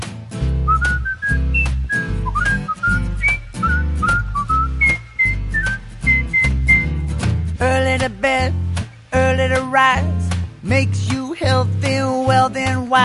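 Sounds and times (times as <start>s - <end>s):
bouncy musical accompaniment with bass and rhythm: 0.0s - 13.0s
bright lilting whistled melody with short gliding notes: 0.6s - 7.3s.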